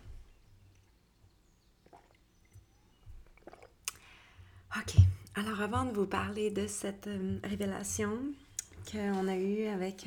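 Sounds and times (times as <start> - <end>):
person sipping water: 1.8 - 4.6
wet swallows: 1.8 - 4.6
sharper mouth click: 3.4 - 4.1
speech: 4.7 - 10.0.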